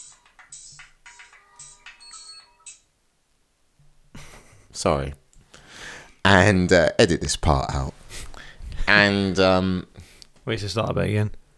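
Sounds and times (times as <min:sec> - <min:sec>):
mobile phone ringtone playing a bright electronic melody: 0:00.0 - 0:02.9
speech: 0:04.8 - 0:05.2, 0:06.3 - 0:08.0, 0:08.9 - 0:11.4.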